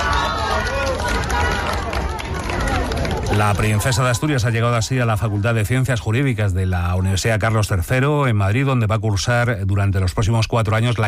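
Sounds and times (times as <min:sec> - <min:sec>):
crowd clapping: 0:00.0 - 0:06.0
dense loud crowd roaring: 0:00.0 - 0:06.1
many overlapping voices calling and cheering: 0:00.0 - 0:08.0
speech: 0:03.4 - 0:11.0.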